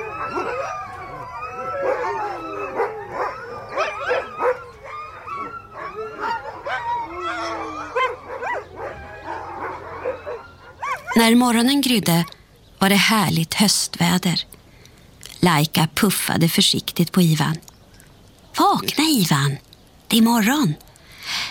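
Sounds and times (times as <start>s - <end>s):
several hungry dogs howling and whining at night: 0.0s - 11.3s
speech: 11.2s - 14.6s, 15.4s - 17.7s, 18.7s - 20.9s.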